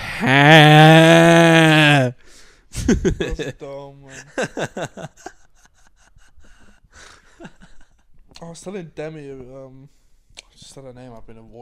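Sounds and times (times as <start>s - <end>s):
person imitating sheep bleating: 0.0s - 2.1s
speech: 0.2s - 0.6s, 2.9s - 5.4s, 8.4s - 10.0s, 10.6s - 11.6s
laughter: 2.8s - 8.1s.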